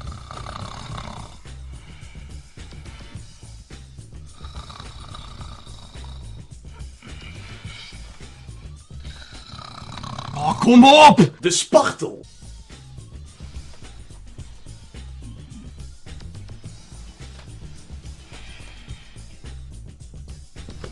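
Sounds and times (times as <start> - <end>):
person imitating a snoring houseguest: 0.0 - 3.2, 4.2 - 11.1, 15.0 - 16.0
speech: 10.5 - 12.3.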